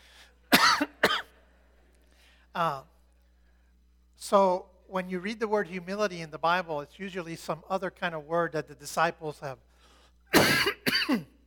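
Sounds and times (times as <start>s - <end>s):
person coughing after drinking water: 0.5s - 1.4s, 10.3s - 11.4s
speech: 2.6s - 2.9s, 4.2s - 9.7s, 10.3s - 11.4s.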